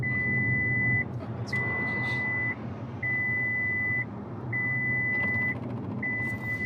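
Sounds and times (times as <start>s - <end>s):
car drowsiness warning alarm long electronic beeps: 0.0s - 6.6s
low rumble of a moving vehicle: 0.0s - 6.6s.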